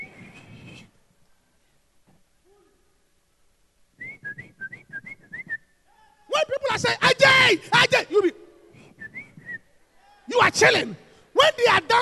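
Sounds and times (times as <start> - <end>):
person whistling a short bouncy tune: 4.0 - 5.8, 8.8 - 9.7
speech: 6.8 - 8.4, 10.3 - 11.9.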